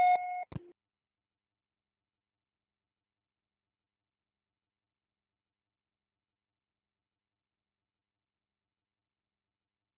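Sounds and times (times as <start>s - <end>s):
voicemail beep after a recorded message: 0.0s - 0.7s.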